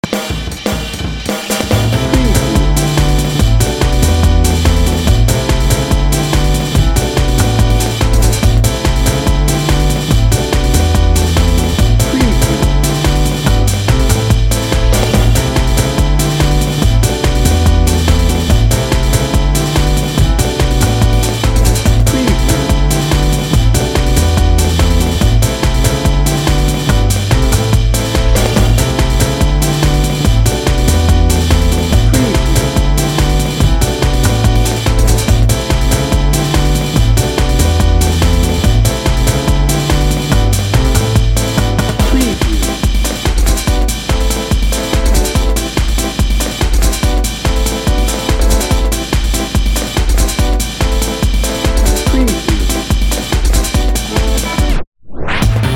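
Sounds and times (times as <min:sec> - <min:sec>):
gritty upbeat instrumental city life music: 0:00.0 - 0:55.7.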